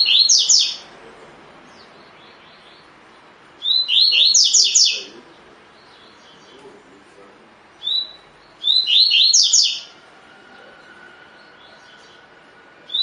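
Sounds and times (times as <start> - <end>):
double-collared seedeater short whistle: 0.0 - 0.8, 3.6 - 5.1, 7.8 - 10.0, 12.9 - 13.0
double-collared seedeater singing: 0.0 - 1.0, 1.6 - 13.0.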